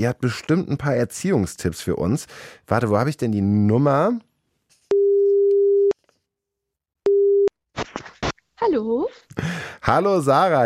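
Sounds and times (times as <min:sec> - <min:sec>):
speech: 0:00.0 - 0:04.3, 0:08.6 - 0:10.6
steady telephone ringing tone as a call is placed: 0:04.9 - 0:05.9, 0:07.1 - 0:07.5.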